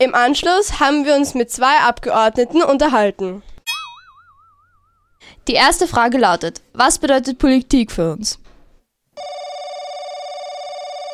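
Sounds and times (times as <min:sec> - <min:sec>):
speech: 0:00.0 - 0:03.5, 0:05.5 - 0:08.4
telephone ringing with electronic ring tone: 0:09.2 - 0:11.1.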